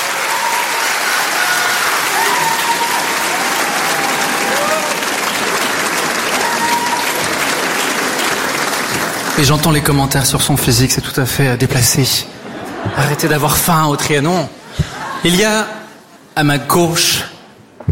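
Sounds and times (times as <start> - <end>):
concert audience applauding: 0.0 - 10.4
speech: 9.4 - 15.8, 16.4 - 17.3
laughter: 12.3 - 13.8, 14.6 - 15.4.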